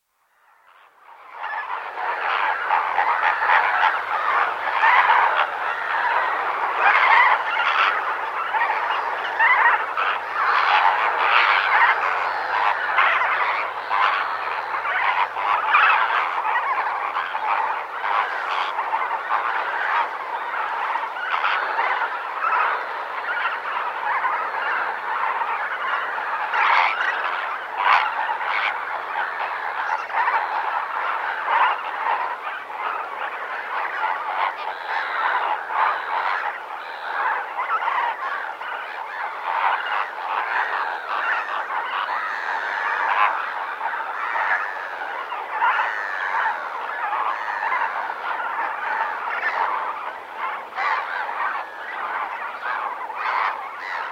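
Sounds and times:
morning atmosphere at Lake Nakuru in Kenya: 0:00.0 - 0:54.0
flamingoes at Lake Nakuru in Kenya: 0:00.6 - 0:54.0.

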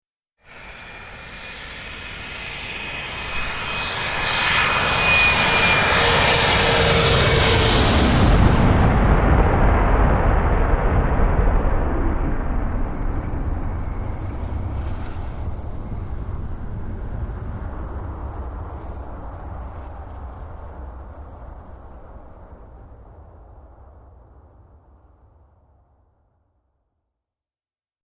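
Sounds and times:
jet aircraft crash: 0:00.5 - 0:24.5
explosions of a jet aircraft crash: 0:06.9 - 0:24.5.

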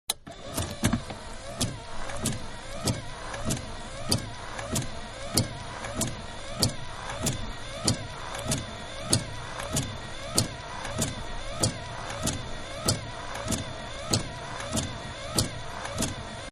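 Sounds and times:
car big windshield wipers fast exterior: 0:00.1 - 0:16.5.

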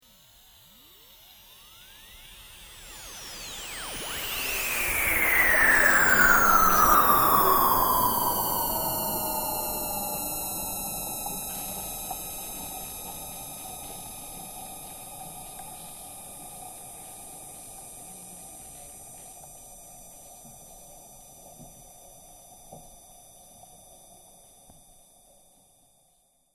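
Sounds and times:
sci-fi spacecraft passing: 0:02.6 - 0:12.7.

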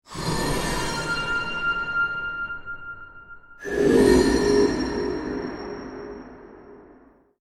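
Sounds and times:
scary piercing metallic horror musical stinger for trailer transition: 0:00.1 - 0:07.2.

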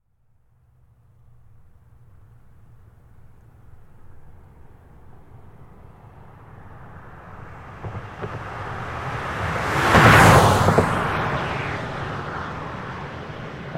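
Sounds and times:
2005 Toyota Highlander V6 driving fast: 0:06.6 - 0:13.6.

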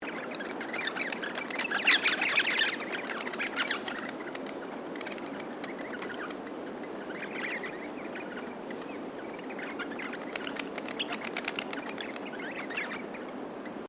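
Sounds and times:
group of Australian crimson rosellas chirping: 0:00.0 - 0:13.8
low steady background hiss: 0:00.0 - 0:13.8.

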